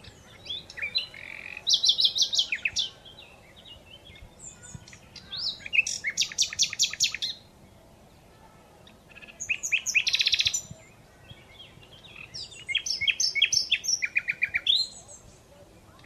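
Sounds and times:
Common Nightingale Luscinia megarhynchos singing: 0.0s - 16.0s.

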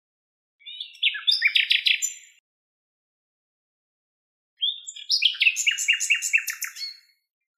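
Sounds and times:
Common nightingale Luscinia megarhynchos singing: 0.6s - 2.4s, 4.6s - 7.2s.

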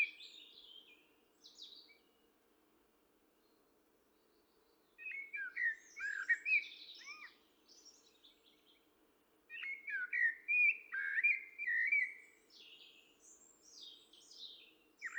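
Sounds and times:
common blackbird Turdus merula singing: 5.0s - 8.5s, 9.5s - 15.1s.

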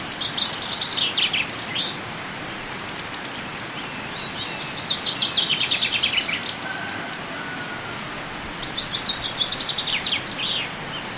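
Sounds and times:
common chaffinch Fringilla coelebs singing: 0.0s - 2.0s, 2.8s - 11.1s.

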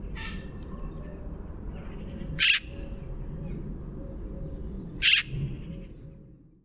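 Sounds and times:
low steady background hum: 0.0s - 6.6s
Eurasian magpie harsh rasping calls: 2.4s - 2.7s, 5.0s - 5.3s.

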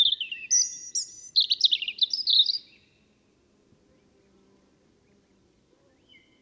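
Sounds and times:
European robin Erithacus rubecula singing tinkling notes: 0.0s - 2.9s.

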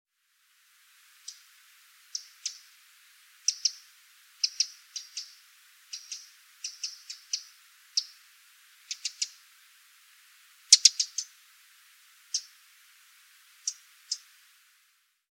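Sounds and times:
Eurasian wren Troglodytes troglodytes uttering high dry ticking notes: 1.2s - 1.5s, 2.1s - 2.8s, 3.4s - 9.4s, 10.7s - 11.4s, 12.3s - 12.6s, 13.6s - 14.3s.

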